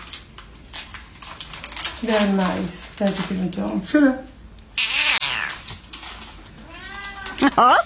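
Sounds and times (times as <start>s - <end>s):
speech: 2.0s - 4.3s, 7.5s - 7.8s
cat meowing: 4.8s - 5.7s, 6.6s - 7.6s.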